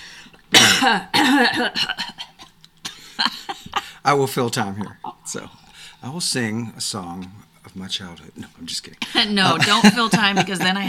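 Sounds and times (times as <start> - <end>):
man clearing his throat loudly: 0.6 - 1.7
speech: 0.8 - 2.1, 3.2 - 3.4, 4.0 - 10.8
laughter: 9.0 - 10.8.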